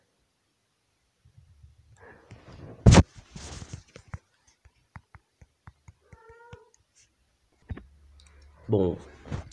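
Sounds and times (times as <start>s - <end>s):
cat meowing, wanting to go out: 6.0s - 6.8s
speech: 8.7s - 9.2s.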